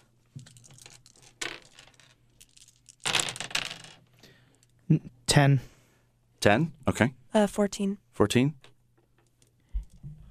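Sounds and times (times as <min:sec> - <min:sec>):
small dice clattering across a hard tabletop: 0:00.4 - 0:04.2
speech: 0:04.9 - 0:05.7, 0:06.4 - 0:08.6.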